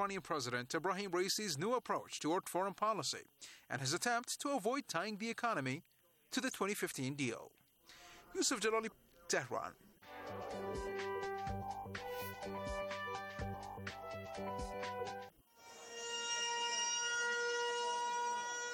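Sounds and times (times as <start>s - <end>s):
speech: 0.0s - 10.9s
rhythmic percussive music: 10.0s - 15.3s
civil defense siren sounded across the West Bank: 15.6s - 18.7s.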